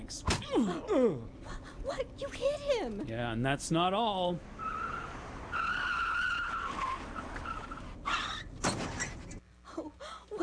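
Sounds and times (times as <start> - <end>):
speech: 0.1 - 4.6
car tires screeching in a long skid: 4.4 - 9.4.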